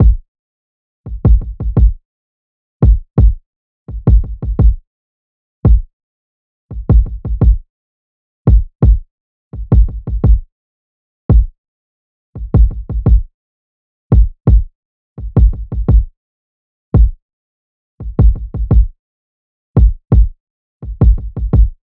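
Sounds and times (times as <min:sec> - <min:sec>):
kick drum loop: 0:00.0 - 0:00.2, 0:01.1 - 0:02.0, 0:02.8 - 0:04.8, 0:05.7 - 0:05.9, 0:06.7 - 0:07.6, 0:08.5 - 0:09.0, 0:09.6 - 0:10.5, 0:11.3 - 0:11.5, 0:12.4 - 0:13.3, 0:14.1 - 0:16.1, 0:17.0 - 0:17.2, 0:18.0 - 0:18.9, 0:19.8 - 0:21.8.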